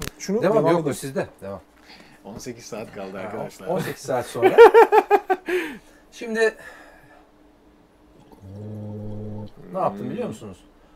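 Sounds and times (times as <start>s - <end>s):
speech: 0.2s - 5.0s, 6.1s - 6.8s, 9.7s - 10.7s
laughter: 4.4s - 5.6s
voiced gurgling hum as a diaphragm-strengthening voice exercise: 8.1s - 10.5s
person gurgling softly in the throat: 8.2s - 9.8s.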